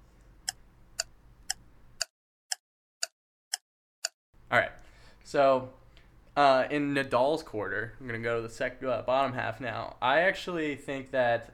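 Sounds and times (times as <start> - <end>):
clock timer ticking: 0.4 - 2.1, 3.0 - 4.2
speech: 4.5 - 4.7, 5.3 - 5.8, 6.4 - 11.5.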